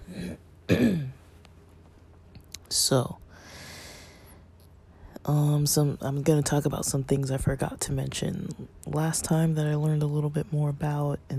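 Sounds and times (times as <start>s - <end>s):
person with a dry throat coughing and clearing throat: 0.0s - 1.2s
speech: 2.9s - 3.2s, 5.3s - 11.3s.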